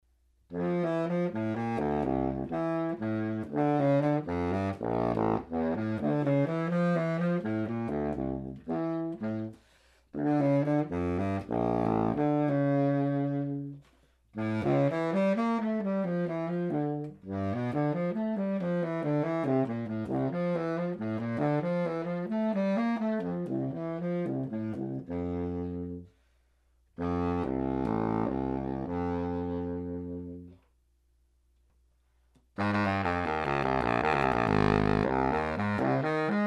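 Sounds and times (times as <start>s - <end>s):
bass saxophone: 0.4s - 30.8s, 32.3s - 36.4s.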